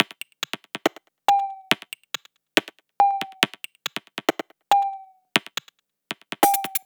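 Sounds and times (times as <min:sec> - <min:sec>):
dubstep percussion loop: 0:00.0 - 0:05.6, 0:06.2 - 0:06.8.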